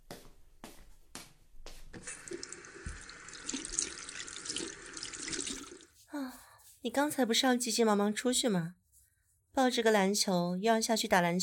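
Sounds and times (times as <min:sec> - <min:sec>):
tap water running into a sink while washing hands: 0:02.0 - 0:05.9
speech: 0:06.8 - 0:08.8, 0:09.6 - 0:11.4.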